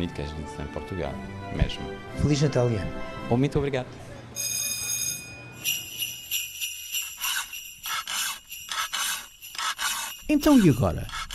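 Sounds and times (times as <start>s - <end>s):
speech: 0.0s - 4.6s, 10.3s - 11.2s
file sharpening a brush cutter blade: 7.1s - 11.3s.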